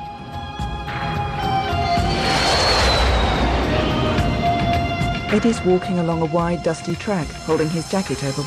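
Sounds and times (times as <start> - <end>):
jet fighter flying low over the desert: 1.3 - 5.3
jet fighter high whine sweeping downward: 1.6 - 5.2
speech: 5.3 - 8.4.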